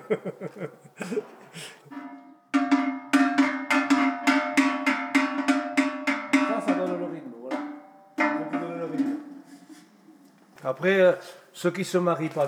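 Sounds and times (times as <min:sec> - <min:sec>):
laughter: 0:00.0 - 0:02.0
speech: 0:00.1 - 0:02.0, 0:10.6 - 0:12.4
Savoie livestock bell clanking: 0:01.9 - 0:09.3.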